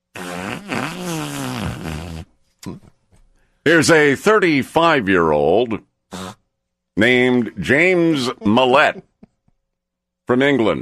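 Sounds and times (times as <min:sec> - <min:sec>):
fart: 0:00.0 - 0:02.9, 0:06.1 - 0:06.4
speech: 0:02.6 - 0:02.9, 0:03.6 - 0:06.2, 0:07.0 - 0:09.1, 0:10.3 - 0:10.8.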